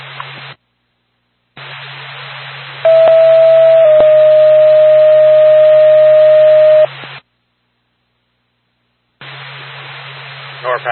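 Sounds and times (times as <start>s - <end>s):
ambulance radio dispatch alert tones: 2.9s - 6.9s.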